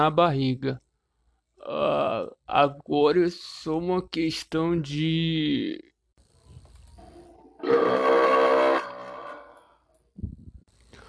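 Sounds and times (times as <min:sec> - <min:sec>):
speech: 0:00.0 - 0:00.8, 0:01.6 - 0:05.9, 0:07.6 - 0:08.3
huge deep rumbling burp: 0:07.6 - 0:09.6.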